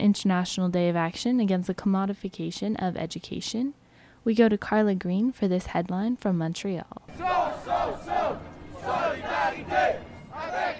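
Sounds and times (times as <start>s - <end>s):
speech: 0.0s - 10.0s
crowd of protesters marching and chanting in Montreal: 7.1s - 10.7s.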